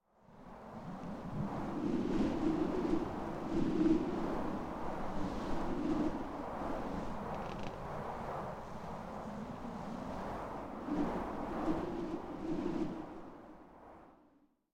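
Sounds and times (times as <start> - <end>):
cold wind gusts whistling: 0.2 - 14.3.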